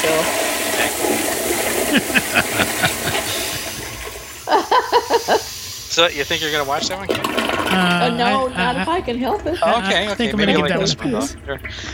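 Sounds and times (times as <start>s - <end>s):
toilet flushing: 0.0s - 11.9s
toilet water gurgling and bubbling: 0.0s - 11.9s
laughter: 0.1s - 11.9s
speech: 6.0s - 11.9s.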